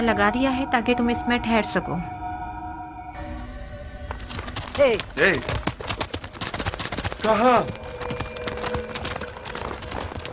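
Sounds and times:
speech: 0.0s - 2.2s, 4.8s - 5.9s, 7.2s - 7.8s
horse hooves clip-clopping as it is led away: 4.0s - 10.3s.

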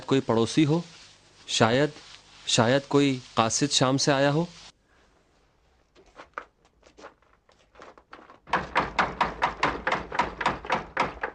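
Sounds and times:
speech: 0.1s - 4.6s
knocking and pounding on a wooden door: 8.5s - 11.3s.

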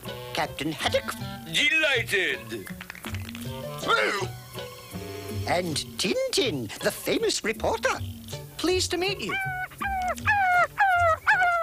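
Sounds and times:
speech: 0.4s - 2.8s, 3.8s - 4.4s, 5.5s - 9.6s
dog whimpering: 9.3s - 11.6s.

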